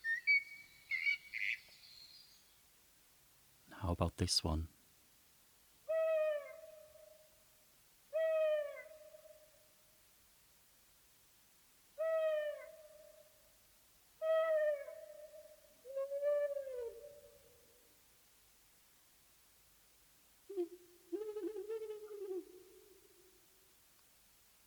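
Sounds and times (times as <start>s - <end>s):
owl hooting: 0.0s - 2.3s, 5.8s - 7.2s, 8.1s - 9.4s, 12.0s - 13.3s, 14.2s - 17.5s, 20.5s - 23.4s
speech: 3.8s - 4.8s.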